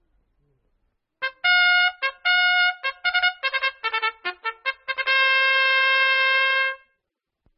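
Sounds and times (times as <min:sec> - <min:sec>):
trumpet playing a short melodic phrase of staccato notes: 0:01.2 - 0:06.9.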